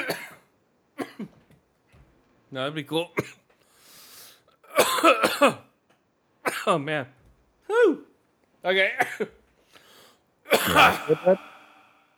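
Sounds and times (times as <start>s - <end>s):
person in a harsh hacking coughing fit: 0.0s - 0.4s, 1.0s - 1.4s, 4.7s - 5.7s, 10.5s - 11.6s
speech: 2.5s - 3.4s, 5.0s - 5.7s, 6.6s - 7.2s, 8.6s - 9.4s, 10.6s - 11.5s.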